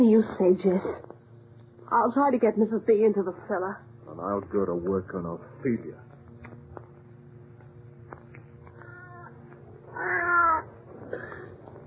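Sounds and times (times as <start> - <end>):
speech: 0.0 - 1.1, 1.9 - 6.1, 10.0 - 11.2
cat yowling: 8.8 - 10.7.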